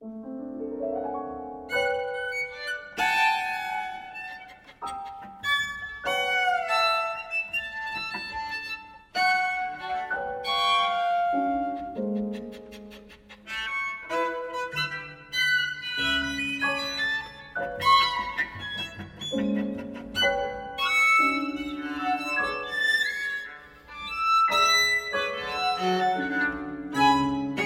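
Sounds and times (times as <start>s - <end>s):
cello: 0.0s - 27.6s
piano: 0.0s - 27.6s
violin: 0.9s - 27.6s.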